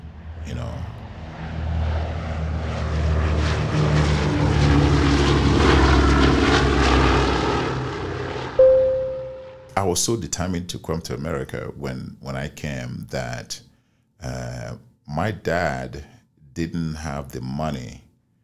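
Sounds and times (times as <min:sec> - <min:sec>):
airplane engines roaring overhead: 0:00.0 - 0:09.9
clear electronic tone: 0:08.6 - 0:09.8
speech: 0:09.8 - 0:18.0.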